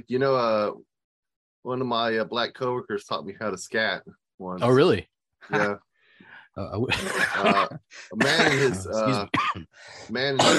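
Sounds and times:
speech: 0.0s - 0.9s, 1.6s - 5.9s, 6.6s - 10.5s
person laughing with strained voiced laughter: 5.5s - 5.8s, 6.8s - 9.3s
person coughing: 7.0s - 9.6s.

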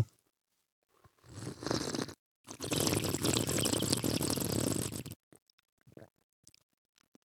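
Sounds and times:
loud airy slurps of coffee as in wine tasting: 1.2s - 5.2s
quiet mouth sounds: 1.7s - 7.2s.

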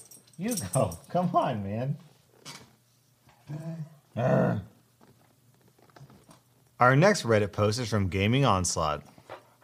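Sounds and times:
speech: 0.4s - 2.1s, 3.5s - 4.7s, 6.8s - 9.1s
dog growling and grunting: 3.4s - 4.8s.

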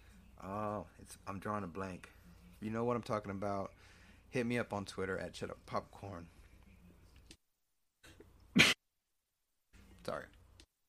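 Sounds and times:
speech: 1.1s - 6.4s, 10.0s - 10.4s
person coughing: 8.6s - 8.8s.

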